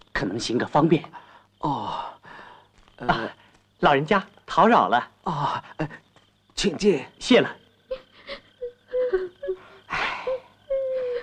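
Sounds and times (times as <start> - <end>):
speech: 0.2 - 2.2, 3.0 - 6.0, 6.6 - 7.6
mother and child crying together: 7.9 - 11.2.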